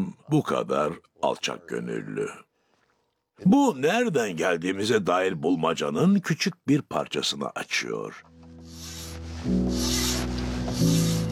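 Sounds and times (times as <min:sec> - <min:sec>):
speech: 0:00.3 - 0:02.5, 0:03.4 - 0:08.3, 0:09.4 - 0:10.0
file rasping across a small fretsaw-cut wooden piece: 0:08.6 - 0:11.3.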